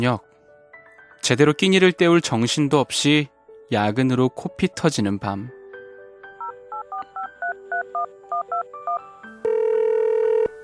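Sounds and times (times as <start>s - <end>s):
speech: 0.0s - 0.3s, 1.2s - 5.6s
telephone keypad tones: 6.4s - 10.5s.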